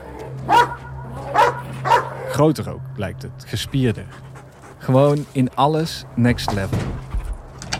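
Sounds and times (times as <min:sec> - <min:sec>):
large Belgian Malinois dog barking: 0:00.5 - 0:02.3
speech: 0:02.4 - 0:07.0.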